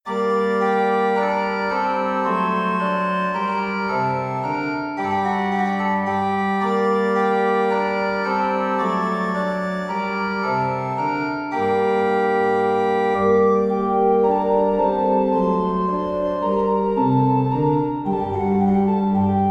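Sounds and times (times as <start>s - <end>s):
organ minuet in B flat major: 0.1s - 19.4s.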